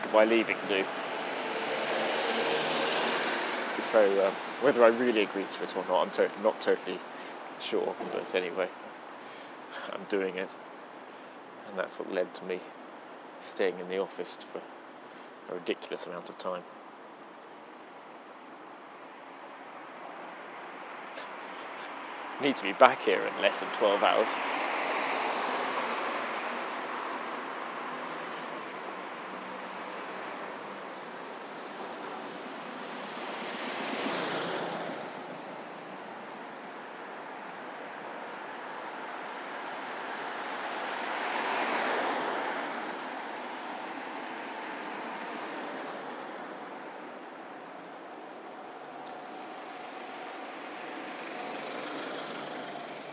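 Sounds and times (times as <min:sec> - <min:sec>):
vehicles passing in steady traffic: 0:00.0 - 0:53.1
speech: 0:00.1 - 0:01.0, 0:03.9 - 0:08.9, 0:09.8 - 0:10.7, 0:11.7 - 0:12.8, 0:13.4 - 0:14.8, 0:15.5 - 0:16.8, 0:22.4 - 0:24.6
faint high-pitched squeal of squeaky brakes: 0:43.9 - 0:47.1, 0:51.5 - 0:53.1.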